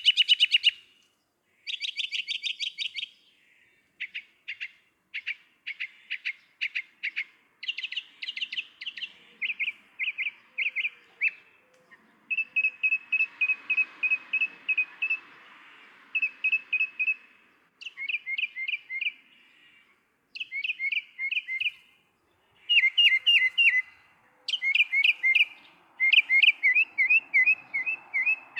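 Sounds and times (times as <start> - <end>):
northern mockingbird singing varied phrases: 0.0 - 0.8, 1.7 - 3.2, 4.0 - 15.3, 17.8 - 19.3, 20.3 - 21.8, 22.4 - 28.5.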